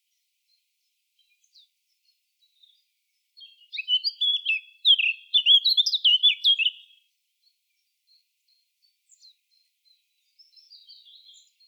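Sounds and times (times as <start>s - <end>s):
Eurasian blackcap Sylvia atricapilla singing: 3.4s - 7.0s, 9.1s - 11.6s.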